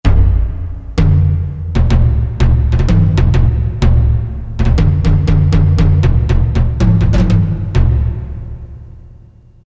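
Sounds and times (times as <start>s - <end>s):
taiko drum on a Roland MT-32 synthesizer: 0.0s - 9.0s.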